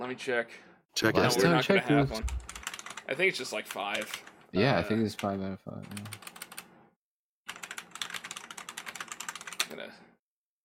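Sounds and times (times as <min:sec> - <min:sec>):
speech: 0:00.0 - 0:02.5, 0:03.1 - 0:06.2
rapid clicky typing on a mechanical keyboard: 0:02.3 - 0:03.0, 0:03.6 - 0:04.3, 0:05.2 - 0:06.7, 0:07.5 - 0:09.8.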